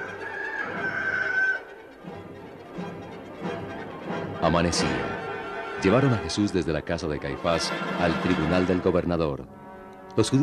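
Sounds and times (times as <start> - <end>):
rooster crowing: 0.0 - 1.7
speech: 4.5 - 5.2, 5.8 - 9.6, 10.2 - 10.4.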